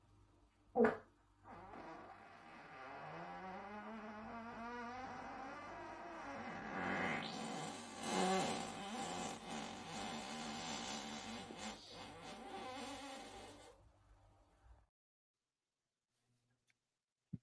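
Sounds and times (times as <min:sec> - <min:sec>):
long drawn-out wet fart: 0:00.8 - 0:13.8.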